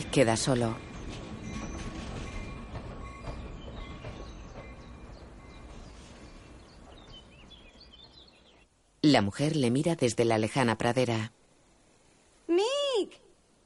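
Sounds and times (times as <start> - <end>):
train pulling away: 0.0 - 8.2
speech: 0.1 - 0.9, 9.1 - 11.4
high metallic train wheel squeals: 0.8 - 5.6.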